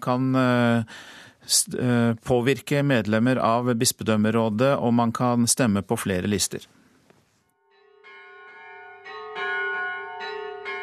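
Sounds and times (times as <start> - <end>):
speech: 0.0 - 6.8
church bells ringing: 7.7 - 10.8.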